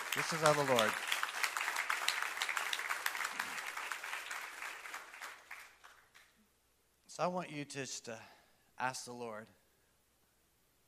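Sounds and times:
congregation applauding: 0.0s - 6.3s
speech: 0.2s - 1.1s, 7.2s - 9.6s.

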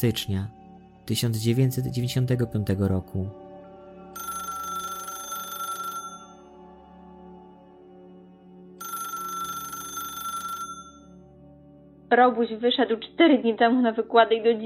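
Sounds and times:
speech: 0.0s - 3.4s, 12.1s - 14.6s
telephone ringing: 4.2s - 6.4s, 8.8s - 11.2s.

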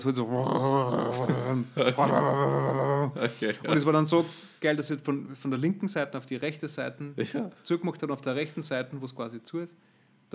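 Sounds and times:
speech: 0.0s - 10.3s
voice imitating a huge heavy gate-like sliding door rumbling: 0.2s - 3.2s.

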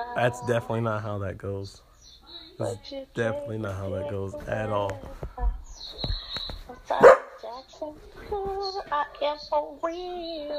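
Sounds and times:
speech: 0.2s - 6.0s, 7.9s - 10.5s
dog barking: 7.0s - 7.5s.

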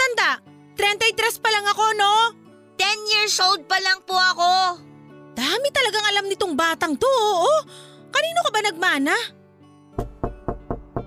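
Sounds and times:
speech: 1.0s - 2.0s, 3.2s - 9.4s
knocking on a door: 10.0s - 11.0s.

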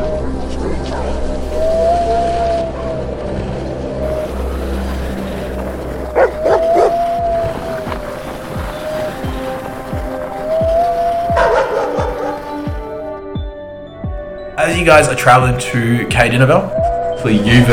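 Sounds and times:
pair of sled dogs barking and yipping: 0.9s - 13.1s
sled dogs whining: 6.2s - 7.8s, 10.6s - 12.8s
speech: 14.8s - 17.7s.

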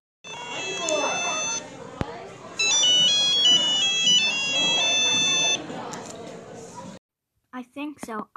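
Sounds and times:
phone ringtone melody: 0.2s - 1.7s, 2.6s - 5.7s
murmur of noise: 0.2s - 7.0s
speech: 7.9s - 8.3s.

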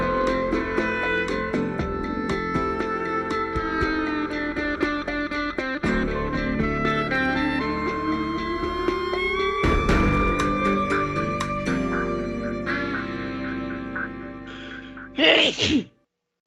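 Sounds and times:
dramatic music with heavy tonal hits: 0.0s - 15.2s
loud sneeze: 14.5s - 15.9s.

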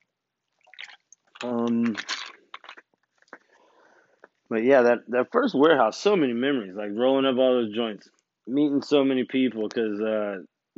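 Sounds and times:
slurping and mouth clicks: 0.6s - 3.6s
person sipping water: 0.6s - 4.4s
speech: 1.4s - 2.2s, 4.5s - 10.7s.

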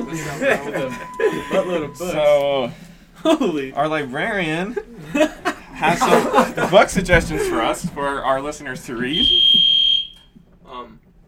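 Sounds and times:
loud piercing electronic alarm beep: 0.0s - 2.4s, 9.1s - 10.3s
murmur of voice: 0.0s - 9.3s
laughter: 0.0s - 9.4s
speech: 0.1s - 9.8s.

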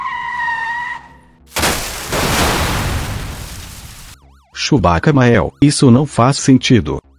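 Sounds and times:
car tire screech with cut brakes: 0.0s - 1.4s
car crash with impact and debris rumble: 1.5s - 4.2s
speech: 4.7s - 7.0s.

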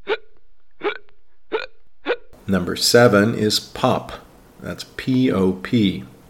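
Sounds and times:
hiccups: 0.0s - 2.3s
speech: 2.5s - 6.1s.

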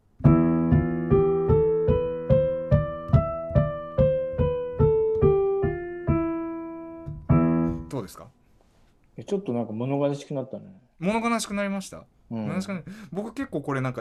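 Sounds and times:
piano playing a major scale starting from E: 0.0s - 8.2s
speech: 8.0s - 8.3s, 9.2s - 13.9s.

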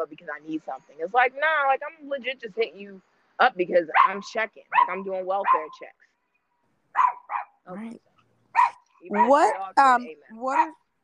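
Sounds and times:
speech: 0.0s - 6.1s, 7.7s - 8.1s, 9.0s - 10.8s
dog barking and yipping with whiny howls: 4.0s - 5.8s, 7.0s - 7.6s, 8.5s - 9.8s.

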